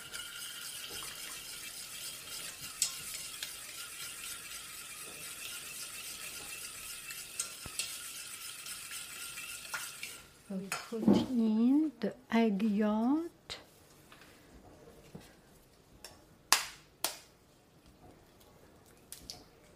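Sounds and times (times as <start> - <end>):
stirring sugar into a mixture: 0.0 - 11.0
speech: 10.6 - 13.0.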